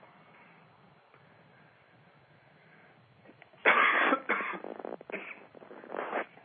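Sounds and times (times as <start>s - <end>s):
person coughing harshly and raspily: 3.7s - 5.5s.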